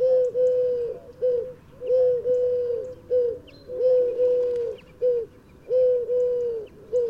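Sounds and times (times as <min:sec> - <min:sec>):
Eurasian collared dove Streptopelia decaocto cooing: 0:00.0 - 0:07.0.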